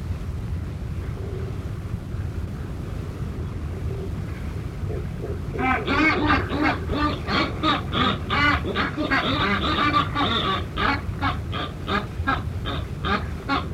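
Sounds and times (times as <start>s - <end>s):
constant low roaring noise: 0.0s - 13.7s
northern Buller's albatross raspy duck-like calls: 4.9s - 13.7s.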